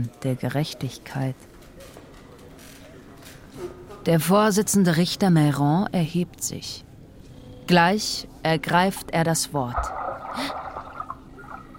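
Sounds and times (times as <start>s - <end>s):
speech: 0.0s - 2.0s, 3.6s - 6.9s, 7.7s - 10.5s
low murmur of voices: 0.0s - 4.1s
single quick splash on the water surface: 9.7s - 11.7s.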